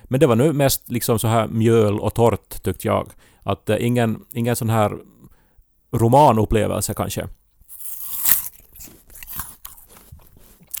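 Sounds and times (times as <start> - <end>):
speech: 0.1 - 5.2, 5.9 - 7.4
crisp apple bite crunch: 7.7 - 10.7
wet crunchy chewing of an apple: 7.7 - 10.7.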